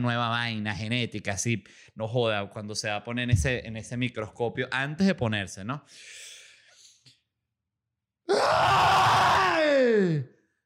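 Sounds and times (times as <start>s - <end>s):
speech: 0.0s - 6.3s
person shouting: 8.3s - 10.3s.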